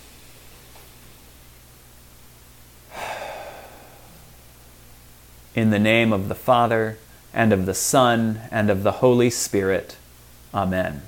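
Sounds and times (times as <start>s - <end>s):
deep breath taken during a church worship service: 2.9s - 4.8s
speech: 5.6s - 11.0s.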